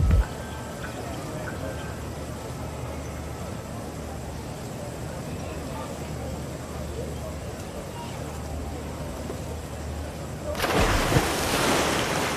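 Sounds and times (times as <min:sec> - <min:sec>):
faint voices: 0:00.0 - 0:11.0
indoor pool ambience: 0:00.0 - 0:12.3
diver entering pool water with a loud splash: 0:10.6 - 0:12.3.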